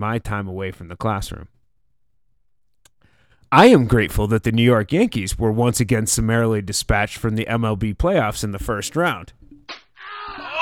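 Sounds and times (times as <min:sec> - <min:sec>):
speech: 0:00.0 - 0:01.6, 0:03.5 - 0:10.2
slap: 0:09.7 - 0:09.9.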